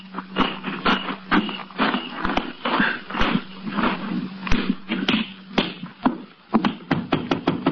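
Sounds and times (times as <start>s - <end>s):
steady low hum: 0.0s - 6.9s
sharp knocks on a door: 6.6s - 7.7s.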